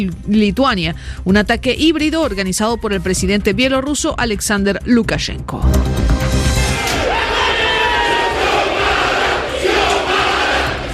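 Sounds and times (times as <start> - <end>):
speech: 0.0 - 6.4
crowd shouting in an indoor parliament chamber: 6.6 - 10.9.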